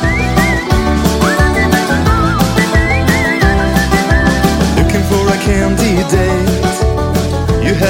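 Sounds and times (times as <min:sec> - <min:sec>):
bright whistled melody: 0:00.0 - 0:05.4
punchy pop backing with steady bass and drums: 0:00.0 - 0:07.8.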